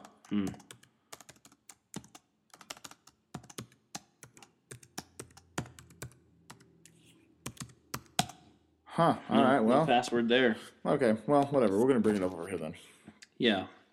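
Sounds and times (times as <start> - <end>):
computer keyboard typing: 0.0 - 8.5
speech: 0.3 - 0.7, 9.0 - 13.8.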